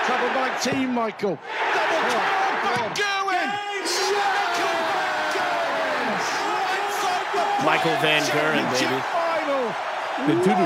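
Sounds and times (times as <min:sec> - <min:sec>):
rowdy darts crowd cheering at a final: 0:00.0 - 0:10.6
speech: 0:00.1 - 0:04.8, 0:07.4 - 0:10.6.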